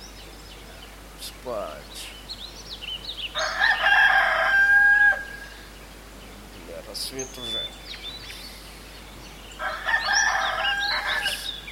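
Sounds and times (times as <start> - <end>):
speech: 1.4 - 2.2, 7.1 - 7.8
rooster crowing: 3.4 - 5.6, 9.6 - 11.6.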